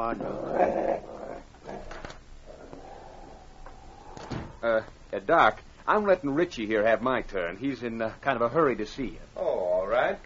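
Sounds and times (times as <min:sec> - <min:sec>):
speech: 0:00.0 - 0:01.1, 0:04.6 - 0:10.2
dog growling: 0:00.0 - 0:04.4.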